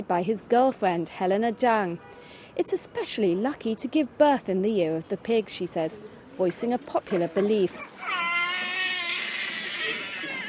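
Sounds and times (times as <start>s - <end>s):
speech: 0.0s - 8.3s
newborn babies crying while bathed in a maternity hospital: 7.8s - 10.4s.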